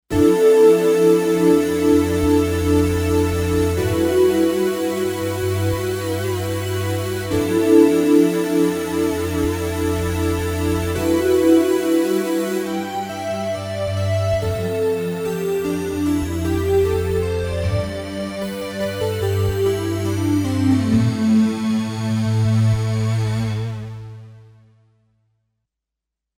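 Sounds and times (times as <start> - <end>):
Kawai K5000S synthesizer factory preset: 0.1 - 24.6.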